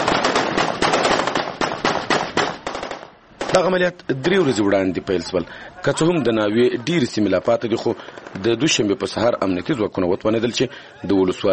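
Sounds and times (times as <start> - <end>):
celebratory gunfire into the air by Afghan army soldiers in a district bazaar: 0.0 - 3.8, 7.8 - 8.8
speech: 3.6 - 11.5.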